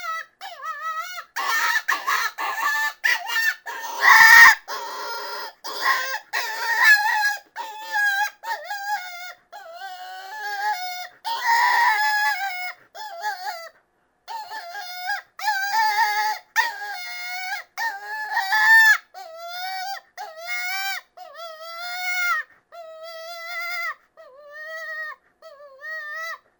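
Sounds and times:
cottontail rabbit distress cries: 0.0 - 26.4.

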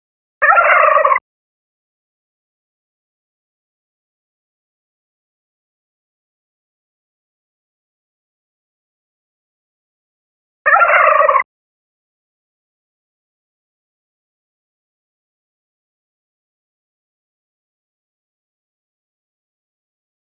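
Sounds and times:
turkey gobbling: 0.4 - 1.2, 10.7 - 11.5.

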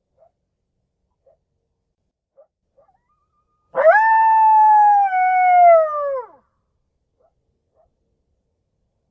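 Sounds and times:
lone coyote howling: 3.8 - 6.4.

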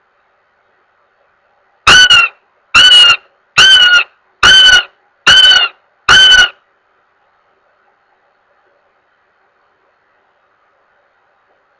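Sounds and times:
goshawk giving harsh level wailing notes: 1.9 - 6.6.

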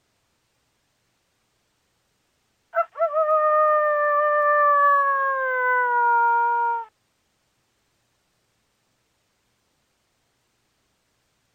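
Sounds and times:
coyote giving a long drawn-out mating howl: 3.7 - 6.9.

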